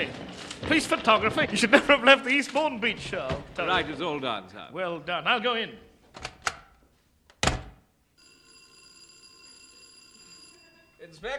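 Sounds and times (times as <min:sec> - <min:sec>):
speech: 0:00.0 - 0:06.3, 0:11.1 - 0:11.3
electric doorbell ringing: 0:08.2 - 0:11.3.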